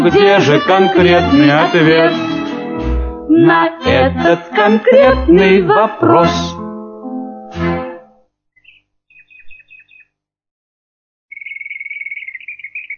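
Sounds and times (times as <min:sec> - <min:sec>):
speech: 0:00.0 - 0:02.3, 0:03.4 - 0:06.5
nightingales singing: 0:08.6 - 0:10.1, 0:11.3 - 0:12.9.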